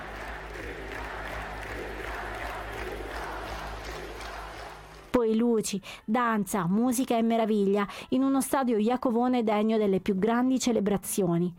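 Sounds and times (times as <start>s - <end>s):
scattered applause: 0.0s - 5.2s
vast stadium crowd roaring and cheering as athletes enter: 0.0s - 5.2s
speech: 5.3s - 11.5s.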